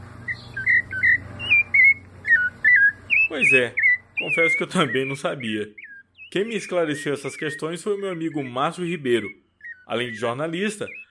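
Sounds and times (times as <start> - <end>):
rufous-bellied thrush singing clear fluty whistled notes: 0.2 - 10.3
speech: 3.3 - 11.0.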